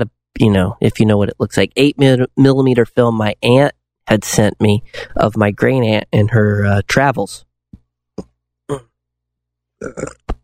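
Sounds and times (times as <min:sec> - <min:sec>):
speech: 0:00.0 - 0:07.5, 0:08.2 - 0:08.9, 0:09.8 - 0:10.2
burps: 0:08.2 - 0:09.0, 0:09.8 - 0:10.4.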